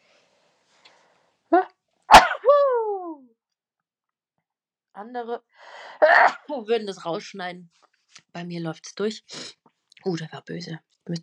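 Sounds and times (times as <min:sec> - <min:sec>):
human sneeze: 0:02.1 - 0:02.5, 0:06.0 - 0:06.5
speech: 0:05.0 - 0:11.2.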